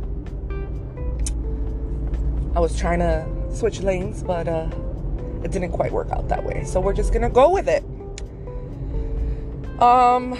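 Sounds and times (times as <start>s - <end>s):
car interior road and engine drone while driving: 0.0s - 10.3s
faint tonal hums: 0.0s - 10.3s
speech: 2.6s - 4.8s, 5.4s - 7.9s, 9.8s - 10.3s.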